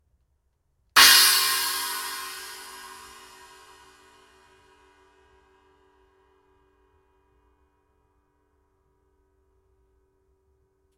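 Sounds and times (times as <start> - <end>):
16-inch China cymbal: 1.0 - 4.4.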